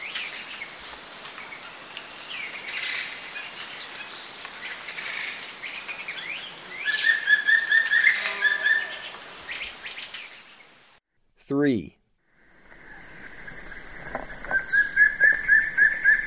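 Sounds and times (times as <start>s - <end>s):
steady high insect drone in the eastern lowlands of South America: 0.0s - 11.0s, 12.4s - 16.2s
Wing-barred piprites whistled notes in the eastern lowlands of South America: 6.1s - 10.8s, 12.6s - 16.2s
speech: 11.5s - 12.0s.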